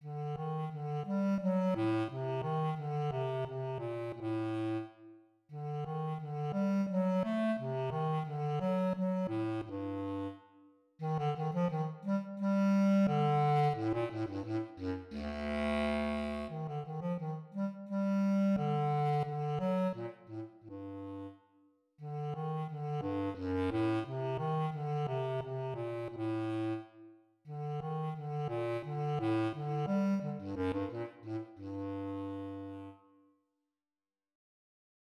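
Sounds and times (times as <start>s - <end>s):
bass clarinet: 0.0s - 10.4s, 11.0s - 21.4s, 22.0s - 33.1s.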